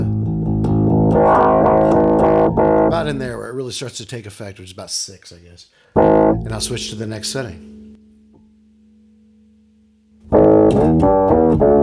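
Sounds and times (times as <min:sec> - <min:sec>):
bass guitar through multi-wave distortion effect: 0:00.0 - 0:03.4, 0:06.0 - 0:11.8
speech: 0:02.9 - 0:07.8.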